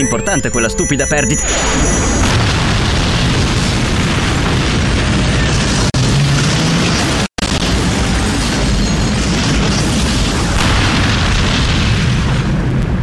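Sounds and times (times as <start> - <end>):
speech: 0.0 - 2.2
crackling debris: 2.2 - 13.0
massive roaring atomic explosion: 2.2 - 13.0.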